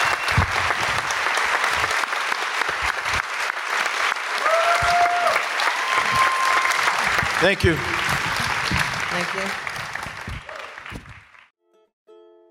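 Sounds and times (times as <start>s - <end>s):
faint whistles: 0.0s - 0.6s
audience applause of many hands clapping: 0.0s - 11.5s
speech: 7.4s - 8.0s, 9.2s - 9.6s.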